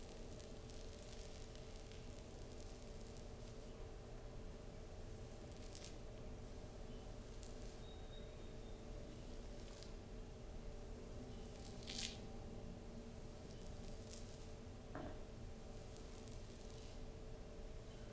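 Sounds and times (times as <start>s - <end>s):
gentle back scratch over fabric: 0.0s - 3.7s, 5.3s - 6.0s, 7.2s - 7.8s, 9.2s - 10.0s, 13.4s - 14.6s, 15.8s - 17.0s
steady low hum and soft hiss: 0.0s - 18.1s.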